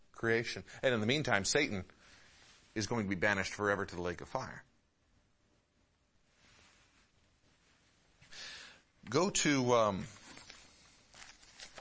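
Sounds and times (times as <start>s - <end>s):
speech: 0.2s - 2.0s, 2.8s - 4.7s, 9.0s - 10.2s
papers being shuffled: 10.0s - 11.7s.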